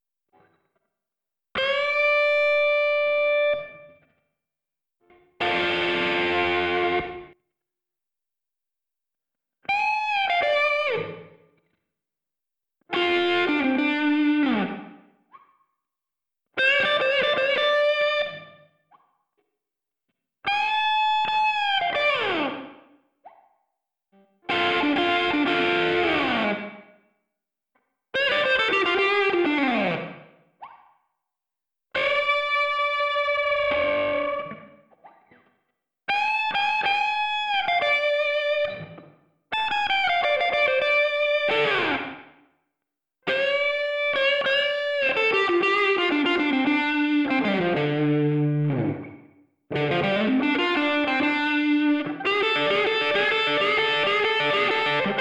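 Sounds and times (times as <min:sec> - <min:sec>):
isolated lead guitar track: 0:01.6 - 0:04.0, 0:05.1 - 0:07.4, 0:09.6 - 0:11.5, 0:12.9 - 0:15.1, 0:16.6 - 0:18.7, 0:20.4 - 0:23.0, 0:24.2 - 0:27.0, 0:28.2 - 0:30.4, 0:32.0 - 0:42.4, 0:43.2 - 0:55.1.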